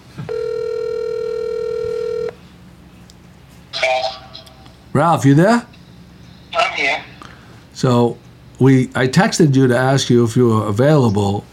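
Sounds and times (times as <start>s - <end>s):
phone call ringing out on speakerphone: 0.3s - 2.4s
speech: 5.0s - 5.7s, 7.8s - 11.5s.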